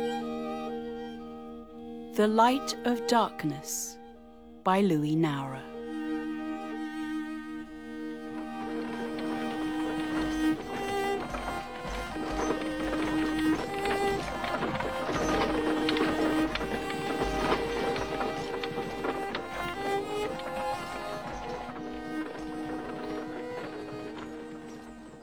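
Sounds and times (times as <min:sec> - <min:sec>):
sustained musical tones: 0:00.0 - 0:25.2
speech: 0:02.2 - 0:04.0, 0:04.7 - 0:05.7
horse-drawn wagons clattering down a street: 0:06.2 - 0:25.2.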